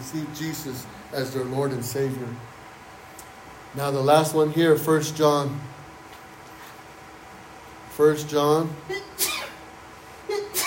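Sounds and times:
speech: 0.1s - 2.6s, 3.7s - 5.7s, 8.0s - 9.1s
person sneezing: 8.9s - 9.7s, 10.3s - 10.6s.

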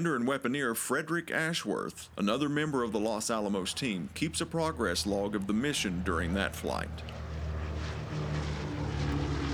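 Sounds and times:
speech: 0.0s - 7.2s
propeller airplane taking off: 2.0s - 9.5s.

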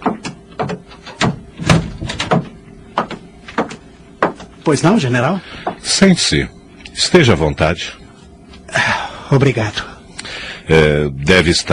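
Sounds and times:
door being handled and closed: 0.0s - 3.7s
sharp knocks, clicks and soft thuds: 0.0s - 4.5s
speech: 4.7s - 8.0s, 9.3s - 9.9s, 10.7s - 11.7s.

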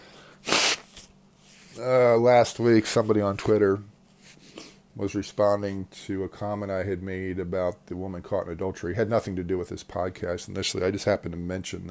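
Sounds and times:
person blowing their nose: 0.0s - 1.1s
speech: 1.8s - 3.9s, 5.0s - 11.8s.

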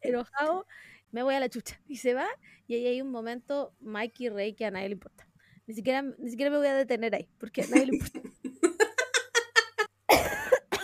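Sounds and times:
speech: 0.2s - 8.2s
laughter: 7.6s - 9.9s
person coughing: 10.1s - 10.8s.

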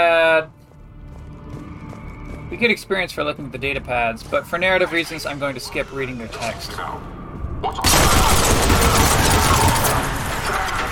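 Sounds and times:
speech: 2.5s - 8.2s
video-game gunfire aimed through windows at guards: 7.8s - 10.9s.

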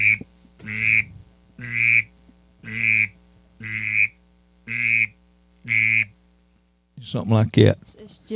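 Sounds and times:
duck call blown to imitate a drake mallard's raspy whistle: 0.0s - 6.1s
speech: 7.1s - 8.3s.

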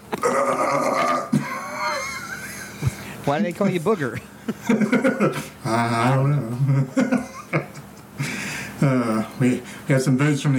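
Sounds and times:
long loud belch: 0.0s - 1.4s, 5.6s - 6.3s
laughter: 0.0s - 3.2s, 4.2s - 9.3s
speech: 3.3s - 7.6s, 8.8s - 10.5s.

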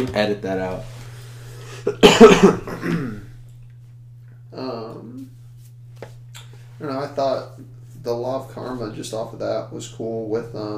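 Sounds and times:
speech: 0.0s - 1.0s, 1.8s - 3.2s, 6.8s - 10.7s
person coughing in a coughing fit: 1.8s - 3.3s
throaty vocal sound: 2.7s - 3.3s.

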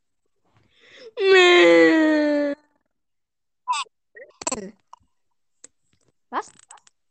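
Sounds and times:
person wailing in mock sobbing: 1.2s - 2.6s.

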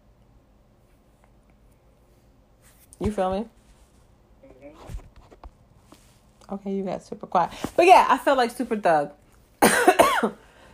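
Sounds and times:
speech: 3.0s - 3.6s, 6.5s - 9.2s, 10.2s - 10.4s
person coughing: 9.6s - 10.4s.

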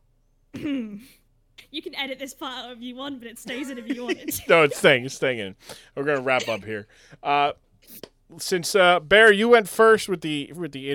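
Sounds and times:
staged gravelly throaty fake cough: 0.5s - 1.2s, 6.2s - 6.7s
speech: 0.6s - 10.9s.

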